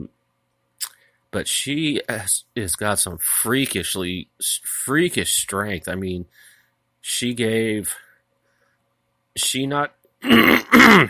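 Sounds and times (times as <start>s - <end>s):
speech: 1.3s - 8.0s, 9.4s - 11.0s
person with an irritated throat clearing it: 10.2s - 11.0s.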